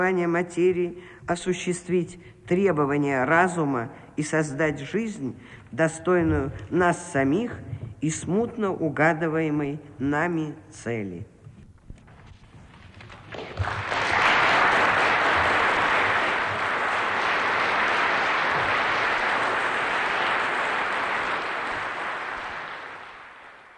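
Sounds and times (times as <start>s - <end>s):
speech: 0.0s - 11.3s
large crowd applauding in a reverberant university assembly hall in Oslo: 13.0s - 23.7s.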